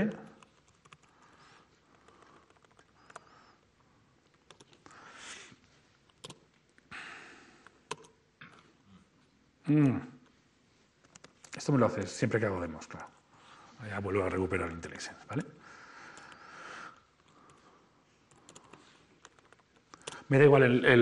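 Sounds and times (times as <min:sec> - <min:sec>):
computer keyboard typing during a coding demo: 0:00.0 - 0:03.6, 0:04.3 - 0:04.9, 0:06.1 - 0:06.6, 0:07.9 - 0:08.2, 0:11.0 - 0:12.2, 0:18.3 - 0:20.3
speech: 0:09.7 - 0:10.1, 0:11.6 - 0:13.2, 0:13.8 - 0:15.6, 0:20.3 - 0:21.0.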